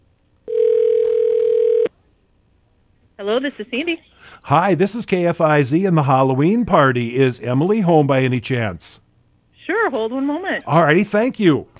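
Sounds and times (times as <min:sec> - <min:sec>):
low buzzing ring tone on a phone line: 0:00.5 - 0:01.9
speech: 0:03.2 - 0:09.0, 0:09.9 - 0:11.7.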